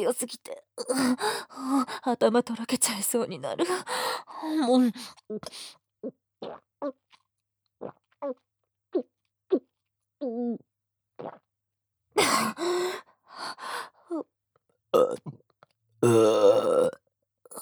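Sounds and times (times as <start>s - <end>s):
speech: 0.0s - 7.0s, 7.8s - 8.4s, 9.0s - 11.4s, 12.2s - 14.3s, 14.9s - 15.4s, 16.0s - 17.0s
short breathy gasps and small vocal noises: 0.9s - 2.1s, 3.7s - 5.8s, 12.2s - 14.0s
loud burps after drinking alcohol: 15.0s - 15.3s, 16.0s - 17.6s.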